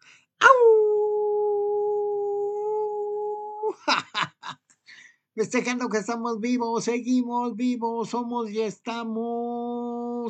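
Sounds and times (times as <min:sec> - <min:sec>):
person imitating a long howl: 0:00.4 - 0:03.9
person yipping and laughing: 0:02.8 - 0:04.6
speech: 0:05.4 - 0:09.6.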